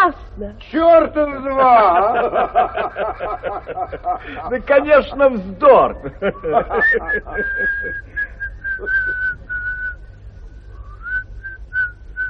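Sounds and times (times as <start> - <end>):
speech: 0.0 - 8.1, 8.8 - 9.4
low rumble: 0.0 - 12.2
laughter: 1.5 - 9.8
woman whistling a slow wavering tune: 7.4 - 10.0, 10.8 - 12.2.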